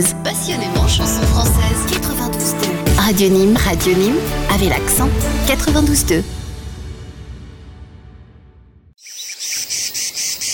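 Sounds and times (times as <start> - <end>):
speech: 0.0 - 2.3, 3.1 - 6.4
cicadas buzzing: 9.0 - 10.5.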